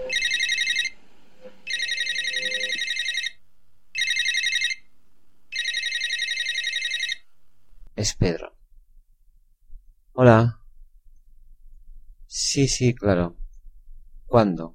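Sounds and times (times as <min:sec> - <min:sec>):
telephone ringing with a rapid warbling trill: 0:00.0 - 0:01.0, 0:01.6 - 0:03.4, 0:04.0 - 0:04.8, 0:05.5 - 0:07.3
speech: 0:08.0 - 0:08.6, 0:10.2 - 0:10.6, 0:12.4 - 0:13.4, 0:14.3 - 0:14.7.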